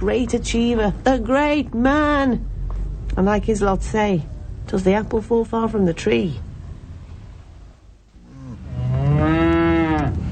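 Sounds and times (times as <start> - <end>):
speech: 0.0 - 2.5, 3.1 - 6.5
outdoor noise: 0.0 - 10.3
cow mooing: 8.2 - 10.2.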